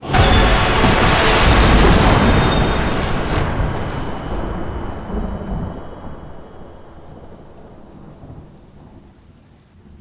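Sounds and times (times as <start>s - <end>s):
epic win jingle: 0.0s - 7.5s.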